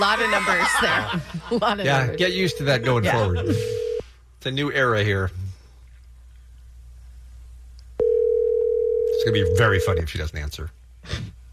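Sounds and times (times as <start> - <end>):
laughter: 0.0 - 2.2, 2.8 - 3.8
speech: 0.0 - 3.8, 4.4 - 5.4, 9.2 - 11.4
faint low telephone line hum: 0.0 - 11.5
telephone busy signal after dialing: 2.0 - 4.0, 8.0 - 10.0.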